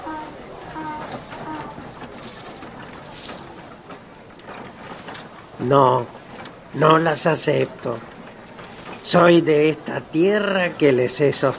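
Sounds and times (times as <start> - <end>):
coins set down on a table clinking: 1.9 - 3.5
speech: 5.6 - 6.2, 6.8 - 8.1, 9.1 - 11.5.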